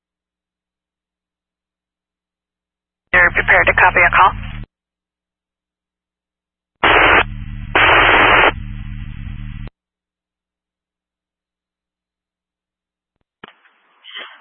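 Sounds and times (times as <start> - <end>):
speech: 3.2 - 4.4
harsh radio static hiss on an emergency dispatch radio channel: 3.2 - 4.7, 6.8 - 9.6
low buzzing hum: 3.2 - 4.7, 6.8 - 9.7.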